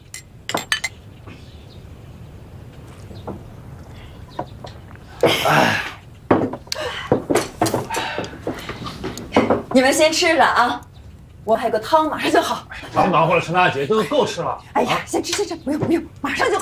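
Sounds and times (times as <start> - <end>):
clattering table noise: 0.0 - 1.0, 6.2 - 9.8
glasses clinking in a toast: 0.0 - 1.0
speech: 3.2 - 3.5, 9.8 - 16.6.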